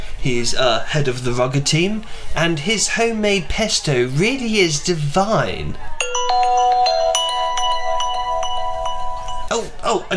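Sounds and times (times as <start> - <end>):
speech: 0.2 - 5.9, 9.5 - 10.1
mobile phone ringtone with bright electronic melody: 6.0 - 9.5.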